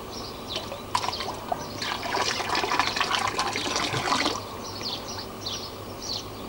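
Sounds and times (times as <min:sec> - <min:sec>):
water splashing and sloshing: 0:00.4 - 0:05.3.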